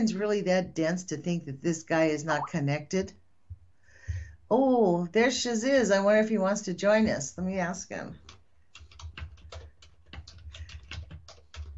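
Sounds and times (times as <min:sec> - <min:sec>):
speech: 0:00.0 - 0:03.2, 0:04.5 - 0:08.2
keys struck on a computer keyboard: 0:08.2 - 0:11.7.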